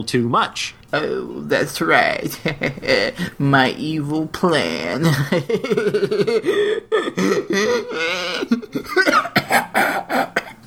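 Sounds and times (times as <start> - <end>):
speech: 0.0 - 10.4
laughter: 1.6 - 10.6
strained breaths: 3.1 - 3.4, 6.4 - 10.6
person coughing and choking on an onion-ring snack caught in the throat: 6.3 - 10.6.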